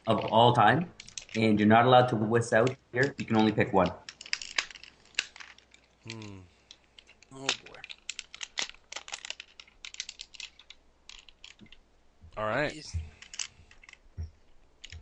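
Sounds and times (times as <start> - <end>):
speech: 0.0 - 4.0, 6.1 - 6.3, 12.6 - 13.1
plastic clicks and snaps from a transforming robot toy being handled: 1.0 - 1.5, 2.6 - 11.8, 13.1 - 15.0
person sighing: 6.1 - 6.6.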